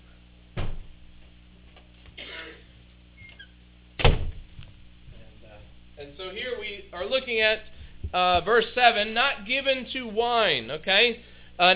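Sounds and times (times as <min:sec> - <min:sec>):
door thump: 0:00.5 - 0:00.9, 0:04.0 - 0:04.8
speech: 0:06.0 - 0:11.7.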